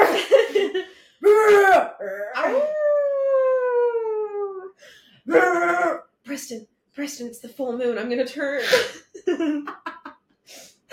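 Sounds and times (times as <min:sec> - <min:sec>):
human voice imitating dogs barking, growling and howling: 0:01.3 - 0:04.7, 0:05.3 - 0:06.1
speech: 0:06.4 - 0:09.8.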